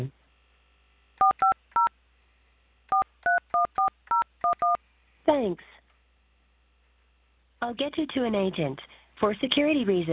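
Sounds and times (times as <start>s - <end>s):
phone keypad DTMF tones entering a phone number: 1.2s - 1.9s, 2.9s - 4.8s
speech: 5.3s - 5.7s, 7.6s - 10.1s.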